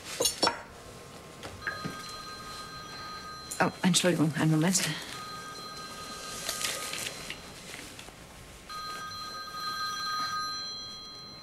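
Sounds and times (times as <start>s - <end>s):
telephone ringing during a medical consultation: 1.6s - 7.7s, 8.7s - 11.4s
speech: 3.6s - 5.2s.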